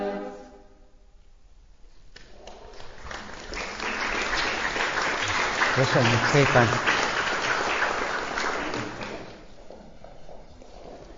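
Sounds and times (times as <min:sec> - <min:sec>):
audience applause after a choir performance: 0:02.6 - 0:09.4
speech: 0:05.8 - 0:07.0.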